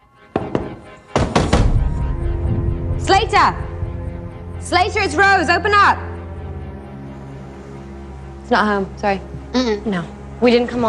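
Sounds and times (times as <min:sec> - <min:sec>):
banging on heavy double doors at the top of a stairwell: 0:00.3 - 0:02.0
speech: 0:03.1 - 0:03.6, 0:04.6 - 0:06.1, 0:08.5 - 0:10.8.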